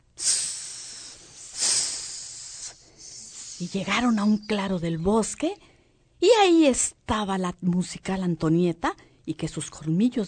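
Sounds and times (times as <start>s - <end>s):
voice imitating a snake's hiss: 0.0s - 4.6s
speech: 3.6s - 10.2s.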